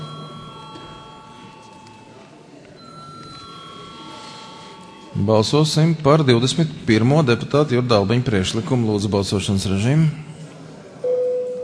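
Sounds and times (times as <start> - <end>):
parliamentary voting electric bell ringing: 0.0 - 2.2, 2.8 - 5.2
murmur of chatter: 0.0 - 11.6
speech: 5.2 - 10.3.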